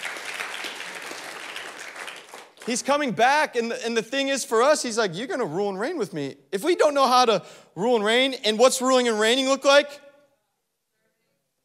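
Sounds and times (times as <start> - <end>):
audience clapping at a sermon: 0.0 - 3.2
speech: 2.6 - 10.0.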